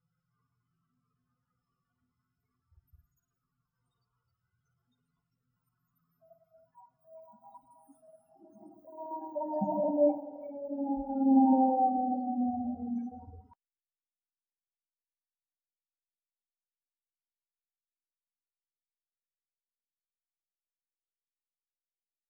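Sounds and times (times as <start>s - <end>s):
possible howl: 7.1s - 13.6s.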